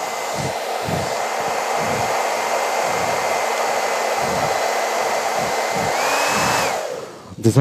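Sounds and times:
hair dryer blowing: 0:00.0 - 0:07.5.

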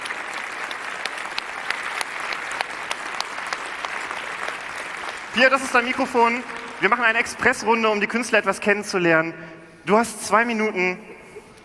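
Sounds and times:
audience applause: 0:00.0 - 0:07.8
speech: 0:05.4 - 0:11.1.

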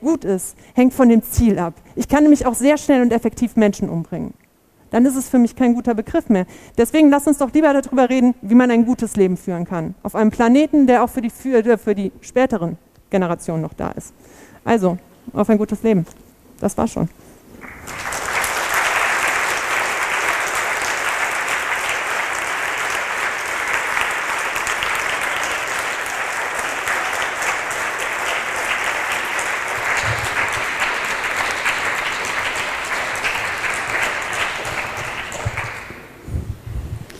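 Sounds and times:
speech: 0:00.0 - 0:18.1
large audience applause after a lecture: 0:17.6 - 0:36.2.

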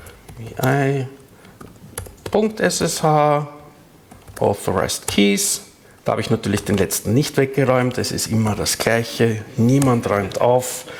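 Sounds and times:
keystrokes on a computer keyboard during a server login: 0:00.0 - 0:03.0, 0:04.1 - 0:05.2, 0:06.0 - 0:07.1
speech: 0:00.4 - 0:01.2, 0:02.3 - 0:03.6, 0:04.4 - 0:10.9.

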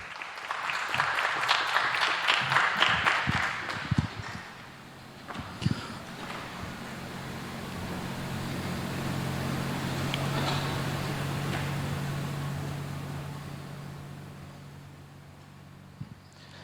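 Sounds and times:
individual louder claps: 0:00.0 - 0:06.4
audience applause welcoming a speaker to a talk: 0:00.0 - 0:15.9.

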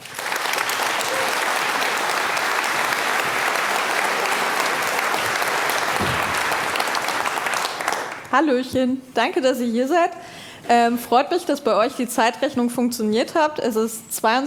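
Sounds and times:
sustained applause from a large audience: 0:00.0 - 0:08.3
speech: 0:08.4 - 0:14.4.

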